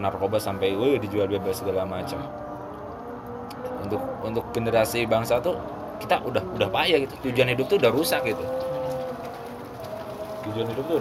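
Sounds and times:
speech: 0.0s - 2.5s, 3.8s - 9.0s, 10.5s - 10.9s
steady rain falling: 7.6s - 10.9s.

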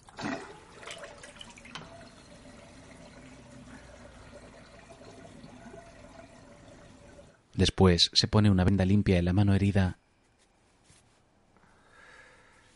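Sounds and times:
red-tinted water draining from a bathroom sink after the plug is pulled: 0.0s - 7.4s
speech: 7.6s - 10.0s.

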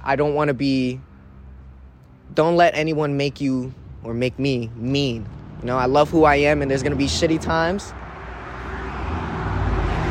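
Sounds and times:
speech: 0.0s - 1.1s, 2.3s - 8.0s
loud car driving past: 6.5s - 10.0s.

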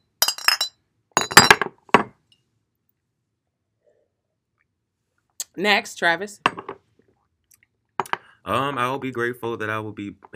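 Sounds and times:
glasses clinking in a toast: 0.2s - 1.7s, 8.0s - 8.3s
speech: 5.6s - 6.6s, 8.5s - 10.3s.

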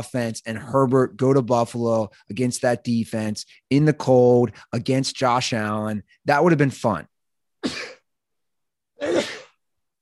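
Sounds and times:
speech: 0.0s - 7.9s
sharp breathy sneezes: 7.6s - 8.0s, 9.0s - 9.6s.

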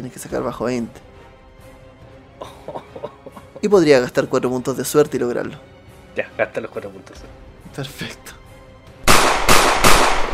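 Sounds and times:
speech: 0.0s - 1.1s, 3.6s - 8.4s
laughter: 2.4s - 3.8s
gunshots: 9.0s - 10.3s.

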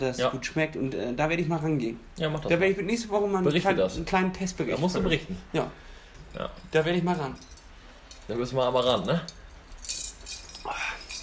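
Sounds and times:
speech: 0.0s - 7.6s, 8.3s - 10.0s
glasses clinking together in a toast: 6.1s - 11.2s.

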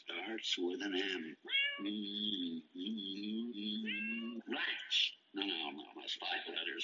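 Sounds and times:
speech: 0.0s - 6.8s
cat meowing: 1.4s - 2.0s, 3.8s - 4.4s.

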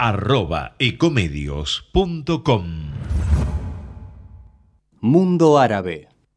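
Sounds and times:
speech: 0.0s - 3.3s, 5.0s - 6.1s
swooshing effect: 2.9s - 4.7s.

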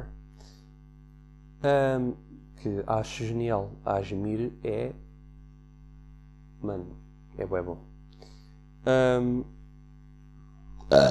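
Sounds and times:
low steady hum: 0.0s - 11.0s
speech: 1.6s - 5.0s, 6.6s - 7.9s, 8.8s - 9.6s
burp: 10.8s - 11.0s.

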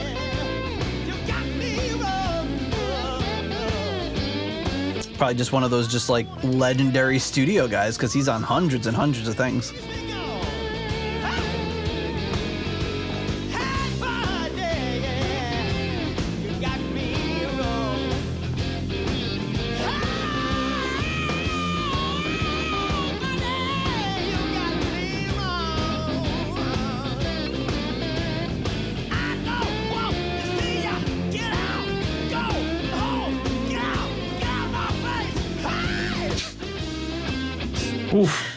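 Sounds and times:
driving drums in a blues rock song: 0.0s - 38.5s
thick guitars in a blues rock song: 0.0s - 38.5s
speech: 5.2s - 10.0s
strained shouting lead vocal screaming: 19.8s - 24.1s, 30.5s - 36.6s.

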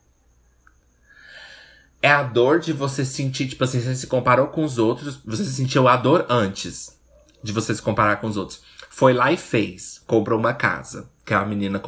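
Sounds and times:
cricket chirping: 0.0s - 11.8s
soft breathy rush of noise: 0.9s - 2.0s
speech: 2.0s - 11.8s.

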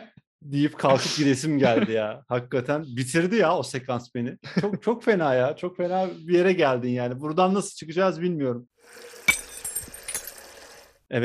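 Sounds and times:
speech: 0.4s - 9.1s, 11.1s - 11.2s
laughter: 0.7s - 2.2s, 4.4s - 5.0s
glass clinking: 9.0s - 10.9s.

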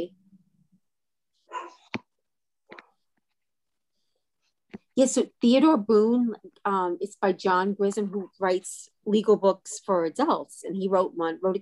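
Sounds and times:
dog barking: 1.5s - 1.9s
speech: 5.0s - 11.6s.

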